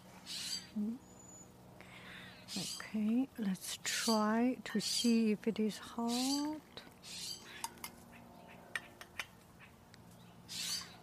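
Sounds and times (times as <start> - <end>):
bird calling with upward-sliding note: 0.2 - 2.9, 6.1 - 9.8, 10.5 - 11.0
speech: 0.8 - 1.1, 2.6 - 6.9.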